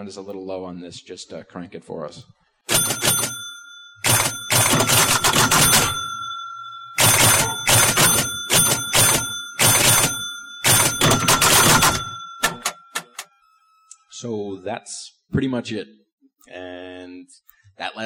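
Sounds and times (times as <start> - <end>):
speech: 0.0 - 3.4, 14.2 - 18.0
pinball machine bell unit and chime unit ringing: 2.7 - 13.4.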